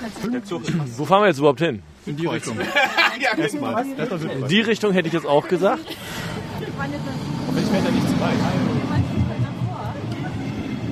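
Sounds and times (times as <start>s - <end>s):
speech: 0.1s - 6.2s, 6.8s - 8.7s
laughter: 2.4s - 7.2s
train rolling into a station with a mechanical roar: 5.4s - 10.9s.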